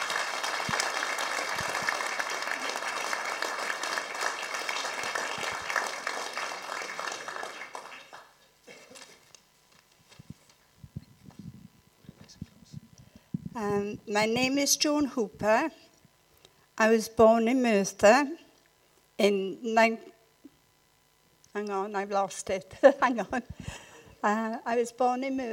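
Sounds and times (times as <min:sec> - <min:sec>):
crowd applauding: 0:00.0 - 0:08.4
shuffling and faint movement in a room: 0:08.8 - 0:12.9
speech: 0:13.6 - 0:15.8, 0:16.8 - 0:18.4, 0:19.2 - 0:20.1, 0:21.6 - 0:25.5.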